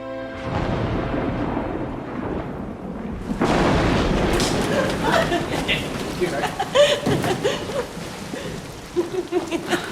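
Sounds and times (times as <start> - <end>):
sudden heavy rain pouring down: 0.4 - 9.9
people laughing over the downpour: 4.6 - 9.9.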